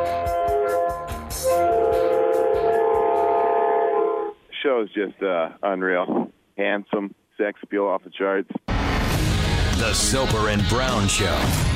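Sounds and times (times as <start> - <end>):
train horn blaring: 0.0 - 4.4
speech: 4.8 - 8.7, 9.8 - 11.7.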